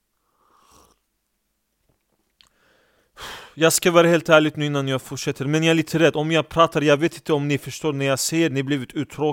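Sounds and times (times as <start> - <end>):
person sipping and swallowing water: 0.4 - 1.1
burst of breath or handling: 2.4 - 3.6
speech: 3.6 - 9.3.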